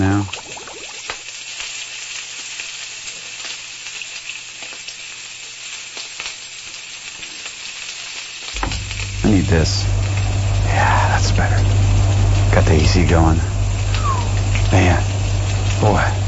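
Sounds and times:
bacon sizzling in a frying pan: 0.0s - 16.2s
faint low hum: 8.6s - 16.2s
speech: 9.5s - 10.0s, 11.4s - 11.8s, 12.6s - 13.5s, 14.7s - 15.1s, 15.8s - 16.2s.

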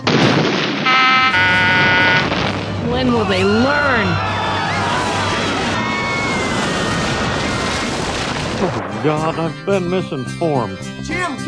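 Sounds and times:
loud explosion with sustained rumbling roar: 0.0s - 3.3s, 4.6s - 9.5s
speech: 3.0s - 4.3s, 8.6s - 11.4s.

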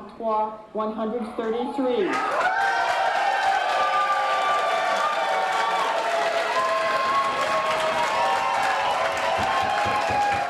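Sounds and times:
speech: 0.2s - 2.8s
excited shouts: 2.1s - 10.4s
large crowd applauding after a vote result: 2.1s - 10.4s.

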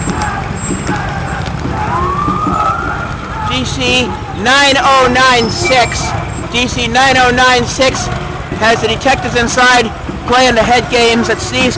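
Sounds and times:
police car siren wailing as it passes: 0.0s - 6.5s
constant street traffic noise: 0.0s - 11.7s
speech: 3.6s - 11.7s.

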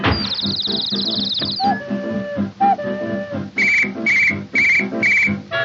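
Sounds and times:
loud whistles blowing: 0.2s - 5.4s.

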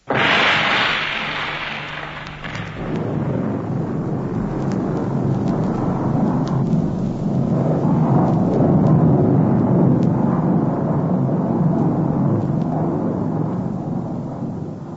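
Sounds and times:
loud sharp explosion from an artificial avalanche release: 0.0s - 14.9s.

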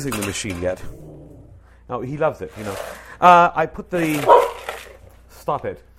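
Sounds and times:
speech: 0.0s - 1.0s, 1.9s - 4.5s, 5.5s - 5.9s
low hum: 0.2s - 1.9s
dog barking and yipping: 4.0s - 5.0s.

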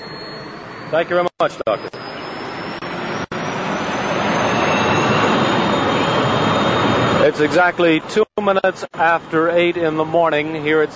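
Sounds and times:
Learjet air rescue jet taking off at Zurich Airport: 0.0s - 8.0s
speech: 0.9s - 2.0s, 7.4s - 10.9s.

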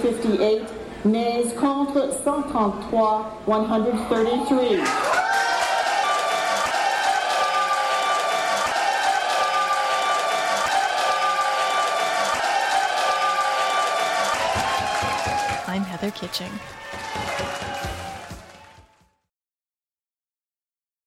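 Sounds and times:
speech: 0.0s - 5.1s, 16.2s - 16.8s
large crowd cheering: 4.6s - 19.3s.

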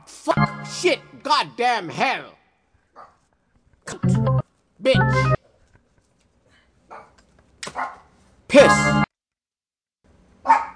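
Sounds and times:
speech: 0.2s - 2.4s, 3.9s - 5.4s
dog barking: 2.9s - 3.2s, 6.9s - 8.1s, 10.4s - 10.7s.

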